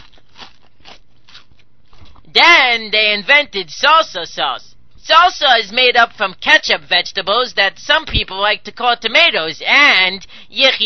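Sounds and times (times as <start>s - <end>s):
crunching of tortilla chips being chewed: 0.0s - 2.2s
speech: 2.3s - 10.8s.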